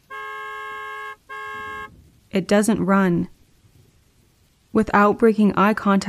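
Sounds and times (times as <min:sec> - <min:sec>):
car horn honking: 0:00.0 - 0:02.0
speech: 0:02.3 - 0:03.4, 0:04.8 - 0:06.0.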